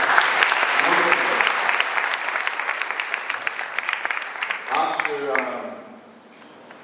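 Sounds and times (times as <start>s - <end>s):
room full of people clapping: 0.0s - 5.6s.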